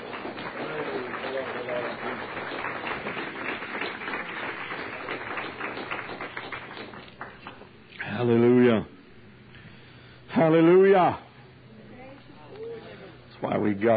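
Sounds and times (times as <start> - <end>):
audience clapping: 0.0 - 7.7
speech: 10.4 - 11.2, 13.7 - 13.9.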